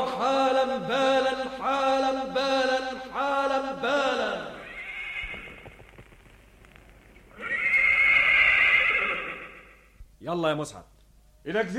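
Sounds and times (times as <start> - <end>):
speech: 0.2 - 4.6, 10.2 - 11.7
horse neighing: 4.6 - 5.7, 7.3 - 10.0.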